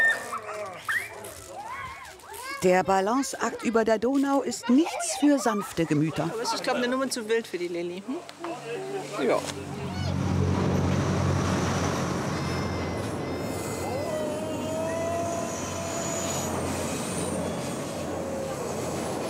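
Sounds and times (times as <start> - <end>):
speech: 2.6 - 9.8
train rumbling across a railway bridge overhead: 9.6 - 19.2
high metallic squeals of train wheels on track: 9.7 - 19.2.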